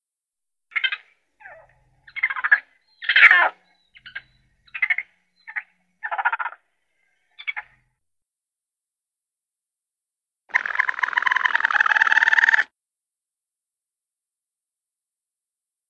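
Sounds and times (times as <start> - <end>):
raccoon chittering: 0.7 - 6.6, 10.5 - 12.6.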